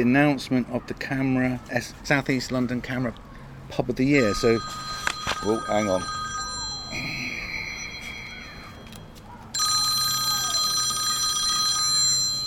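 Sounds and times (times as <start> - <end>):
speech: 0.0 - 6.2
telephone ringing with trilling electronic bell: 4.2 - 12.4.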